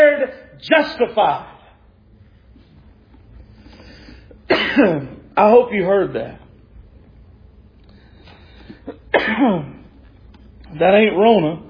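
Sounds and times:
speech: 0.6s - 1.5s, 4.8s - 6.4s, 8.9s - 9.8s, 10.7s - 11.6s
dry throat cough: 4.4s - 5.2s, 8.8s - 9.8s.

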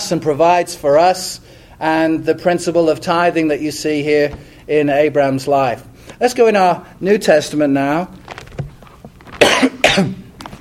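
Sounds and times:
speech: 0.1s - 8.2s, 10.0s - 10.2s
person coughing: 9.4s - 10.3s.

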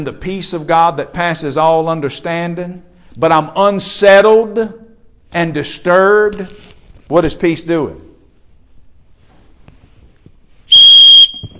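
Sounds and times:
speech: 0.0s - 8.0s
faint noise: 0.0s - 11.5s
loud shrill whistle blast: 10.7s - 11.5s.

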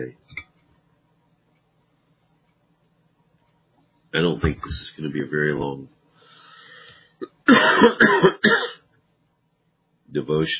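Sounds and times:
speech: 0.0s - 0.3s, 4.1s - 6.0s, 7.2s - 8.7s, 10.1s - 10.5s
person with a persistent cough coughing: 7.2s - 8.8s.

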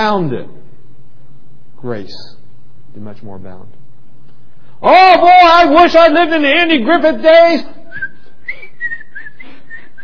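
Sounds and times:
speech: 0.0s - 0.6s, 1.8s - 3.8s, 4.8s - 7.8s
low hiss: 0.0s - 10.0s
person whistling a tune: 7.9s - 10.0s.

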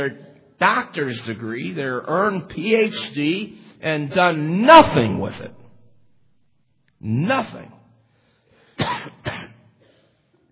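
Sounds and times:
speech: 0.0s - 5.6s, 7.0s - 7.8s
man with a bad cough coughing harshly: 8.8s - 10.0s.

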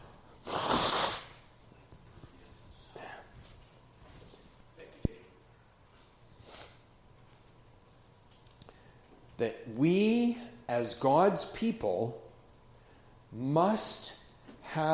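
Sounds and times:
nose blowing: 0.0s - 1.4s
sniffs: 0.4s - 1.4s, 6.4s - 6.9s
speech: 9.4s - 12.2s, 13.3s - 14.2s, 14.8s - 14.9s.

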